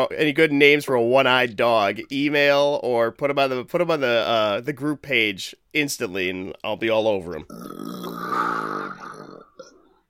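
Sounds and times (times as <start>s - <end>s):
speech: 0.0s - 9.1s
belch: 7.5s - 10.0s.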